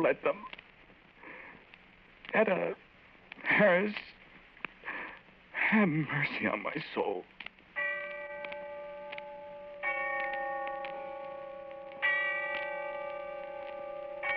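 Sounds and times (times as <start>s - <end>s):
speech: 0.0s - 0.6s, 2.3s - 2.8s, 3.4s - 4.2s, 5.7s - 7.3s
deep bell tolling in the distance: 7.8s - 14.3s.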